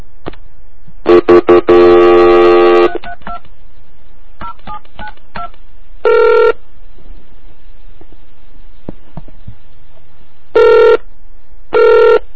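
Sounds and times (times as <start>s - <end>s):
longer sustained modem tone: 1.0s - 3.1s, 6.0s - 6.6s, 10.6s - 11.1s, 11.7s - 12.3s.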